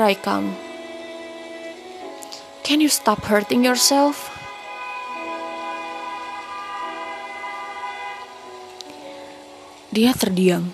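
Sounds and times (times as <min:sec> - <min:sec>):
speech: 0:00.0 - 0:00.6, 0:02.7 - 0:04.4, 0:10.0 - 0:10.7
loud sustained horn blaring: 0:00.0 - 0:09.6
vehicle traffic noise: 0:03.7 - 0:09.8.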